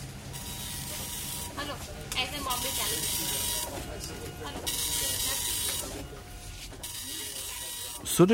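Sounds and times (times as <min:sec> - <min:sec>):
new seven-colour computer printer running: 0:00.2 - 0:08.3
speech: 0:08.2 - 0:08.3.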